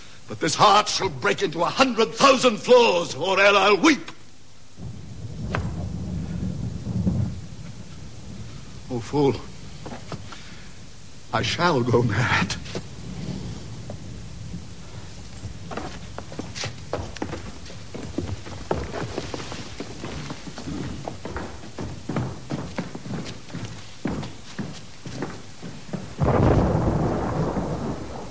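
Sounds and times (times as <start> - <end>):
steady pattering rain in a thunderstorm: 0.0 - 28.2
speech: 0.3 - 4.2, 9.0 - 10.0, 11.3 - 12.8
low rolling thunder in a thunderstorm: 4.7 - 24.1, 25.5 - 28.2.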